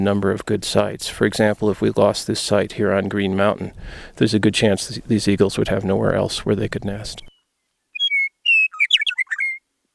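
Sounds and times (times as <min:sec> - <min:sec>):
speech: 0:00.0 - 0:07.3
meadowlark singing in spring on a post: 0:05.1 - 0:09.6.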